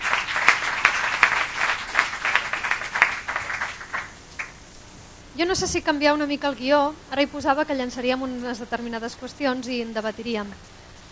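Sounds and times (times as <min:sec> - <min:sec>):
audience applauding a presenter: 0:00.0 - 0:04.6
speech: 0:05.4 - 0:10.8.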